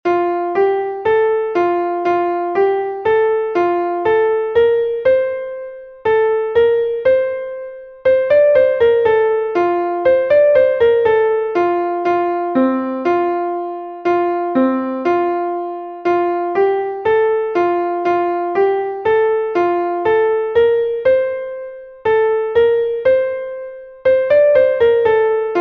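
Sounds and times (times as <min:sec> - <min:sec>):
piano canon: 0:00.0 - 0:25.5.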